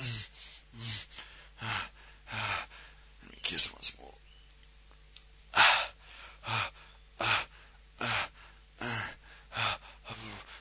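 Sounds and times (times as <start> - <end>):
heavy rapid panting breaths from two people: 0.0 - 3.2, 5.5 - 10.6.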